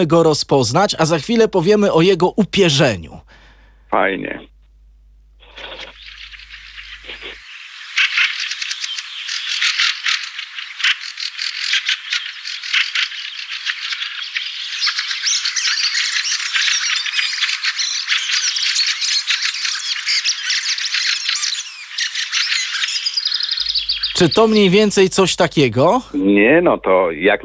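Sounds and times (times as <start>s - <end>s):
speech: 0.0s - 3.3s, 3.9s - 4.5s, 24.2s - 27.4s
flock of fieldfares giving chack-chack calls: 5.4s - 26.2s.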